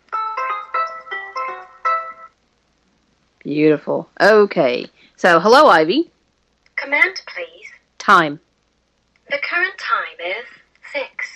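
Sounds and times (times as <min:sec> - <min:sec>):
bell-like electronic alarm chime melody from a voice assistant speaker: 0:00.2 - 0:02.3
speech: 0:03.4 - 0:06.1, 0:06.9 - 0:08.5, 0:09.3 - 0:11.3.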